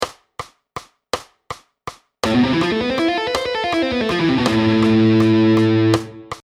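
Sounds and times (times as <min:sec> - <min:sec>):
Hirajoshi scale melody: 0:02.2 - 0:06.4.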